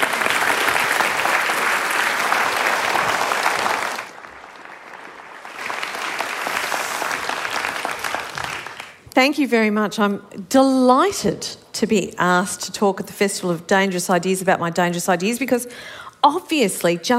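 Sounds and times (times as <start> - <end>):
audience applause welcoming a speaker: 0.0 - 9.0
speech: 9.2 - 17.1.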